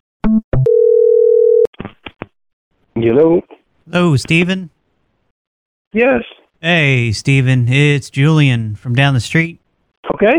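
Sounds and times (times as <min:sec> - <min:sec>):
telephone dial tone as a call is placed: 0:00.6 - 0:01.7
speech: 0:03.0 - 0:04.8, 0:05.9 - 0:10.3.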